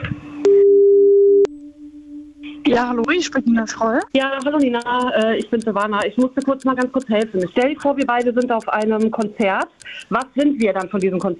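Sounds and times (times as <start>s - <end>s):
phone ringing tone after dialing a call: 0.5s - 3.4s
speech: 2.7s - 11.3s.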